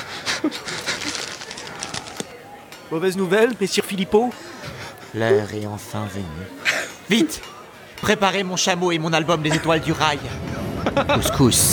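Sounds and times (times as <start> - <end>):
laughter: 0.0 - 2.2, 9.3 - 11.6
speech: 0.4 - 0.9, 2.9 - 4.5, 5.1 - 11.7
crow flapping wings: 0.6 - 2.4.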